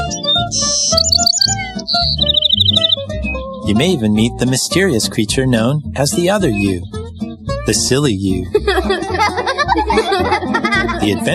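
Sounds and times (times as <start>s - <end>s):
birds chirping in a forest: 0.0s - 4.6s, 5.5s - 8.5s
steady low musical bed: 0.0s - 11.3s
speech: 1.9s - 7.0s, 7.7s - 11.3s
laughter: 7.8s - 11.3s.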